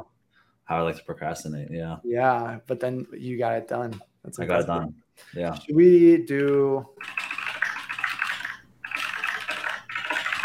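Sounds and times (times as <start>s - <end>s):
speech: 0.7s - 7.3s
fast typing on a computer keyboard: 7.0s - 10.4s.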